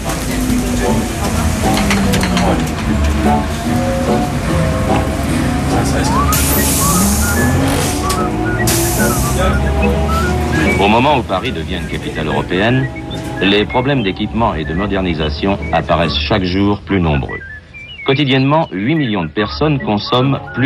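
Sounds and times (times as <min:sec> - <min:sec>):
broadband hissing surges: 0:00.0 - 0:16.3
bus engine and road noise pulling into a bus station terminus: 0:00.0 - 0:20.6
speech: 0:11.0 - 0:17.5, 0:18.1 - 0:20.6.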